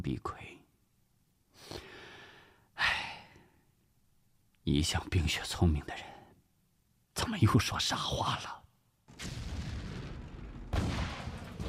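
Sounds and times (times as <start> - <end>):
speech: 0.0 - 0.6, 4.7 - 6.2, 7.2 - 8.6
distant artillery fire booms: 9.1 - 11.6.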